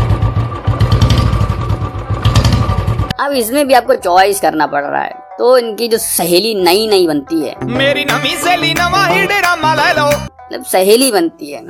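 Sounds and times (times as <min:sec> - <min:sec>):
Bullet motorcycle engine thumping at a steady idle: 0:00.0 - 0:03.2
speech: 0:03.3 - 0:11.6.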